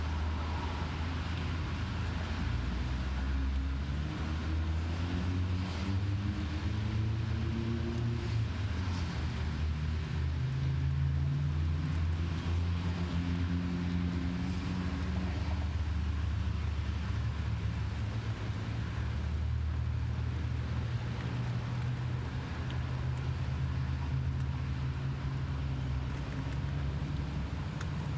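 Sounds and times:
rain hissing against a car window: 0:00.0 - 0:28.1.

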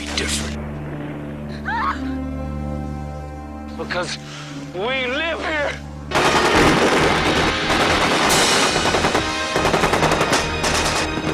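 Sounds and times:
speech: 0:00.2 - 0:00.6, 0:02.0 - 0:02.3, 0:03.8 - 0:05.9
heavy gunfire barrage of sharp cracks: 0:06.1 - 0:11.3
sustained machine-gun bursts: 0:06.1 - 0:11.3.

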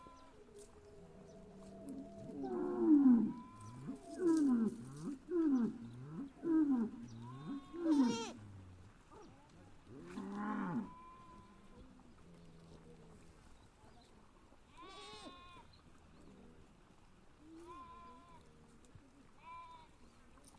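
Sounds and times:
fainter higher calls from other animals: 0:00.0 - 0:08.4
cows mooing in a pasture: 0:01.1 - 0:08.4, 0:10.0 - 0:10.9.

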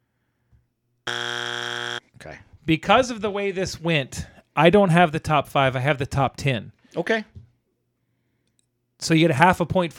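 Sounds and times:
loud harsh game show buzzer: 0:01.1 - 0:02.0
speech: 0:02.2 - 0:07.4, 0:09.0 - 0:09.9.

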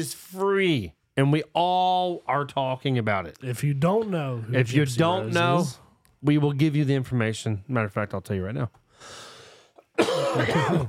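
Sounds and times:
speech: 0:00.0 - 0:09.3, 0:10.0 - 0:10.8
soft breathy exhale: 0:08.9 - 0:09.8
harsh throaty cough: 0:09.9 - 0:10.8.

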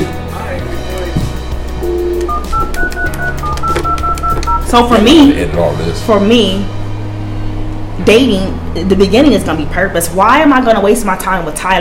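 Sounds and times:
short electronic phone keypad beeps: 0:01.8 - 0:04.8
steady busy hum: 0:01.8 - 0:11.7
speech: 0:04.7 - 0:06.8, 0:08.0 - 0:11.7.

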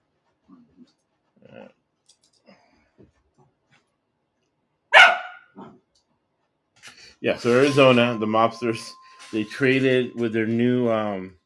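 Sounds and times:
dog barking: 0:04.9 - 0:05.8
speech: 0:07.2 - 0:11.4.

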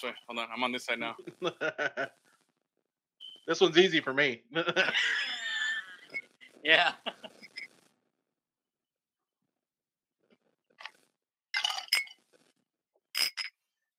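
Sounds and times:
speech: 0:00.0 - 0:02.2, 0:03.4 - 0:05.3, 0:06.6 - 0:07.5
laughter: 0:01.2 - 0:02.1, 0:04.6 - 0:07.3
glasses clinking in a toast: 0:11.6 - 0:12.2, 0:13.2 - 0:13.6.

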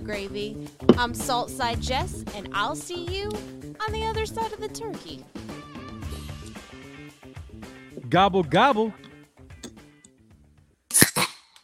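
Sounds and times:
speech: 0:00.0 - 0:05.5, 0:08.1 - 0:09.1
beer can being cracked open: 0:10.9 - 0:11.6.

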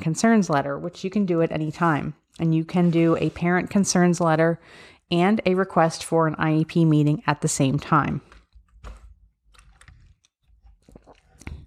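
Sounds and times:
speech: 0:00.0 - 0:08.3
person sipping water: 0:10.6 - 0:11.6.

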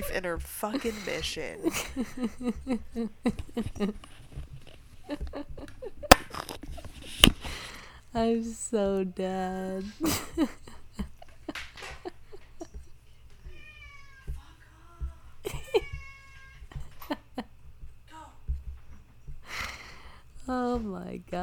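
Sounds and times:
laughter: 0:00.0 - 0:07.8, 0:09.8 - 0:13.1, 0:14.7 - 0:16.0, 0:16.6 - 0:17.6
speech: 0:00.2 - 0:04.5, 0:05.1 - 0:05.7, 0:08.1 - 0:10.7, 0:20.5 - 0:21.4
cat meowing loudly: 0:13.4 - 0:14.4.

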